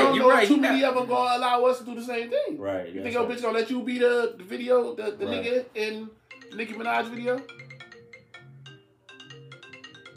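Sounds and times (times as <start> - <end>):
speech: 0.4 - 7.7
phone notification alerts for a group message: 6.2 - 10.1.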